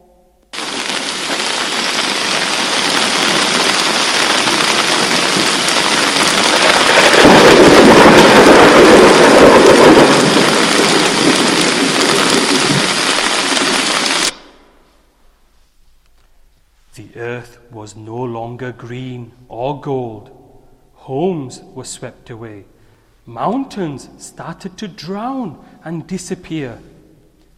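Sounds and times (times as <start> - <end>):
heavy pouring rain in a thunderstorm: 0.6 - 14.5
rumbling thunder: 0.6 - 14.6
speech: 17.9 - 20.4, 21.0 - 26.9.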